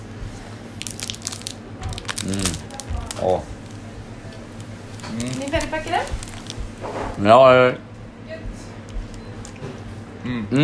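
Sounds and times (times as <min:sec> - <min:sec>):
crisp bite into a strawberry-flavoured snack: 0:00.8 - 0:03.2, 0:05.0 - 0:06.6
wet crunching chews: 0:00.8 - 0:07.2, 0:08.8 - 0:09.7
speech: 0:05.7 - 0:06.2, 0:06.8 - 0:07.9, 0:10.2 - 0:10.6.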